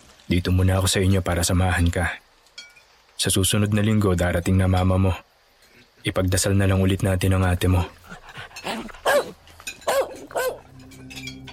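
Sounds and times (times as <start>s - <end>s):
speech: 0.3s - 2.2s, 3.2s - 5.3s, 6.0s - 8.5s
dog howling loudly: 8.6s - 10.7s.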